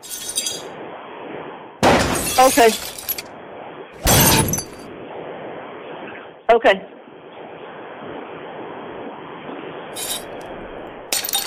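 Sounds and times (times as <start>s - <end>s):
steady noise: 0.0s - 11.4s
glass shattering: 1.8s - 3.2s, 4.0s - 4.8s, 11.1s - 11.4s
speech: 2.4s - 2.9s, 6.5s - 7.0s.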